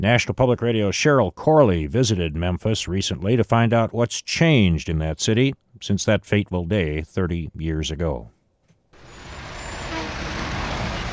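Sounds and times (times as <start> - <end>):
speech: 0.0 - 8.4
garbage trucks rolling out of sanitation yards: 9.0 - 11.1
thin high whine of garbage truck engines: 9.0 - 11.1.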